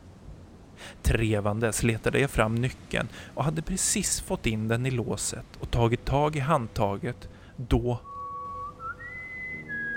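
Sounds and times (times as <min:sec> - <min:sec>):
speech: 0:00.9 - 0:08.1
eerie human whistling: 0:08.0 - 0:09.9.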